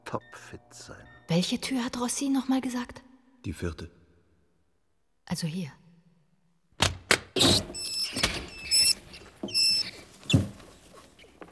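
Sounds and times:
speech: 0.1 - 4.0, 5.3 - 5.8
caged mice squeaking in a laboratory: 7.4 - 11.5
rustling and scratching in mouse cages: 7.4 - 11.5.

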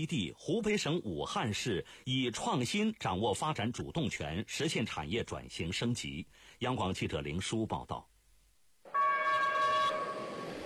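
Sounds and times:
speech: 0.0 - 8.1
container freight train horn blast departing a freight station in Wuhan: 8.9 - 10.6.

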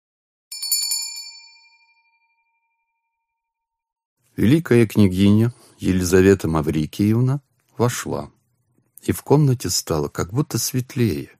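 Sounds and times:
small metal hand bell ringing: 0.5 - 3.2
speech: 4.4 - 8.4, 9.0 - 11.3.

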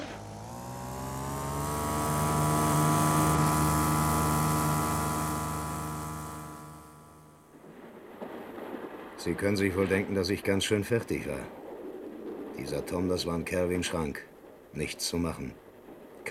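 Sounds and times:
car engine at full throttle: 0.0 - 7.5
speech: 9.2 - 11.6, 12.6 - 15.6.

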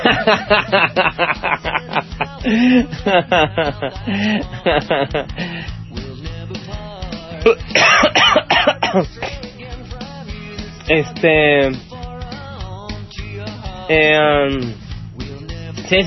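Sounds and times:
laughter: 0.0 - 5.4
speech: 0.1 - 5.5, 7.4 - 9.4, 10.9 - 11.9, 13.9 - 14.8, 15.9 - 16.0
harsh coughs: 7.4 - 9.4
raspy throat clearing and strained voiced hacking: 7.4 - 9.4.

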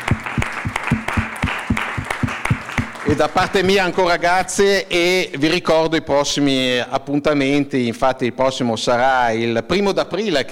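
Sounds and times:
audience applause at the close of an evening talk: 0.0 - 4.0
speech: 3.1 - 10.4.

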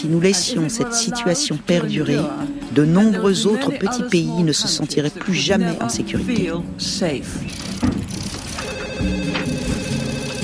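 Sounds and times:
speech: 0.0 - 8.1
telephone ringing with bell-like tones: 8.4 - 10.4.

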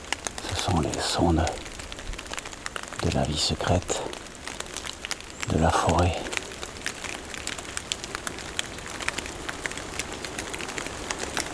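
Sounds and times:
light dusting of snow melting and dripping in a forest: 0.0 - 11.5
speech: 0.7 - 1.7, 3.0 - 4.2, 5.5 - 6.3.

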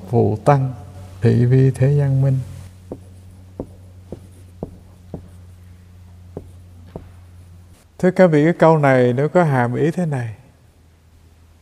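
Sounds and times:
low steady hum: 0.0 - 11.5
speech: 0.1 - 3.0, 8.0 - 10.4
writing Chinese characters: 2.9 - 5.6, 6.4 - 7.8.

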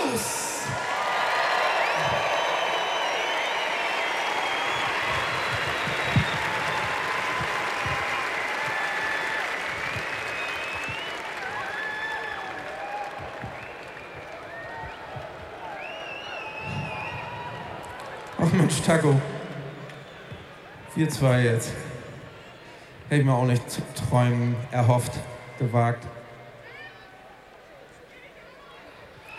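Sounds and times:
large live concert audience applauding in an arena in Cologne: 0.1 - 20.8
speech: 18.9 - 19.3, 21.0 - 21.9, 23.1 - 26.2.

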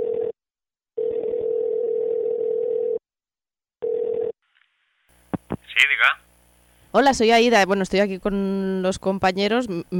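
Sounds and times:
telephone ringing tone on an outgoing call: 0.0 - 0.4, 1.0 - 3.0, 3.8 - 4.4
speech: 5.8 - 6.3, 6.9 - 9.9.

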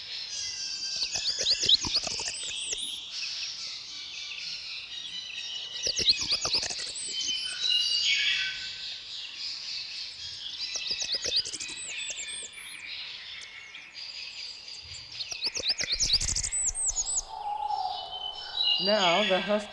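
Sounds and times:
dense chorus of other birdsong: 0.0 - 19.7
Blackburnian warbler song, high-pitched and wiry: 0.2 - 3.2, 5.0 - 9.0, 10.2 - 19.7
speech: 18.9 - 19.7.

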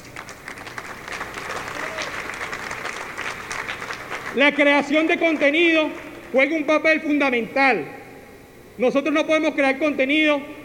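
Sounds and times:
crowd applause at a communications gathering: 0.0 - 6.1
speech: 4.4 - 8.0, 8.8 - 10.6.

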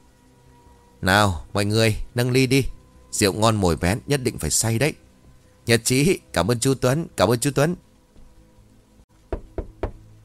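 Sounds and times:
low hum: 0.0 - 10.2
speech: 1.0 - 5.0, 5.6 - 7.9
knocking on a door from outside: 9.3 - 10.0.

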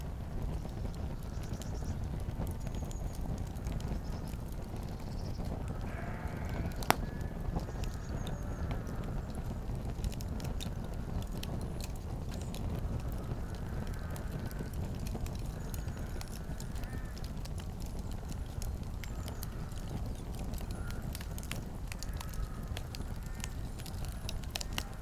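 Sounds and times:
fireplace fire crackling: 0.0 - 25.0
sheep bleating faintly: 5.7 - 7.3.

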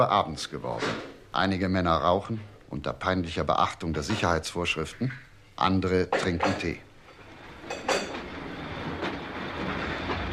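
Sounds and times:
speech: 0.0 - 6.9
night mail train wheels running on the rails nearing Carlisle station: 6.2 - 10.3.

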